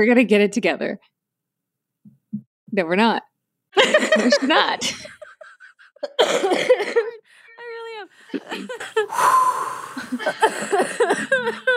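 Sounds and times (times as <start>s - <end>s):
speech: 0.0s - 1.2s, 2.3s - 5.2s, 6.0s - 7.2s, 8.0s - 11.7s
people laughing: 3.8s - 7.3s, 8.1s - 9.2s, 9.8s - 11.7s
person coughing in a harsh breathy fit: 6.0s - 7.2s, 10.1s - 11.7s.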